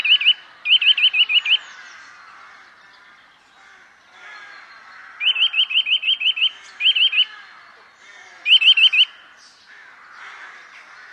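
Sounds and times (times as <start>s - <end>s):
Eurasian nuthatch calling in piping notes: 0.0s - 2.2s, 4.9s - 7.4s, 8.4s - 9.3s.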